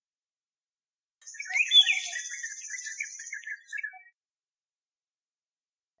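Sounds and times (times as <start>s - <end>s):
iora whistling phrases: 1.2s - 4.1s.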